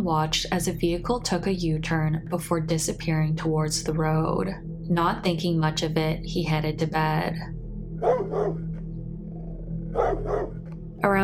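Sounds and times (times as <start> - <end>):
speech: 0.0 - 8.6, 10.0 - 11.2
steady low droning hum: 0.0 - 11.2
dog barking: 8.0 - 8.6, 10.0 - 10.6.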